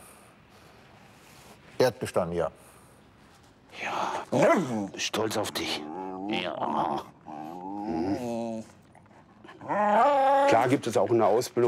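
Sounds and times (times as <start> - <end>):
speech: 1.8 - 2.7, 3.9 - 7.1, 9.7 - 11.6
detection dog in training whining: 5.7 - 10.8.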